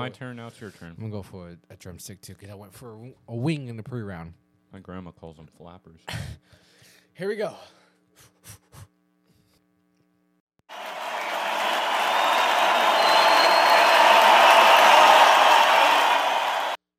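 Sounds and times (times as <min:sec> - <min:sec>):
speech: 0:00.0 - 0:06.6, 0:07.2 - 0:08.9
crowd cheering and applauding: 0:10.7 - 0:16.8.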